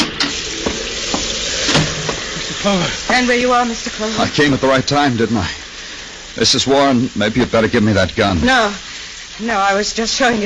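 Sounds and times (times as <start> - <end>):
rain with wind and sea at night: 0.0 - 10.4
speech: 2.6 - 5.6, 6.4 - 10.4.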